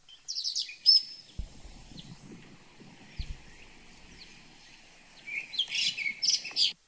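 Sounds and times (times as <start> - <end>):
quiet hiss of flowing water: 0.0 - 6.8
blue-and-white flycatcher singing clear whistled phrases: 0.1 - 2.3, 3.0 - 6.8
soft low thumps: 1.3 - 5.9.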